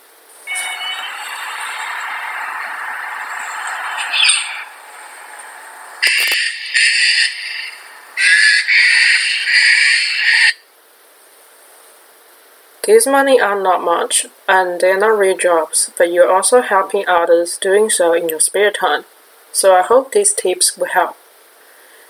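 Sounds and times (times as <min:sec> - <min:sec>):
common Australian bird calling: 0:00.5 - 0:09.7
speech: 0:12.9 - 0:21.2.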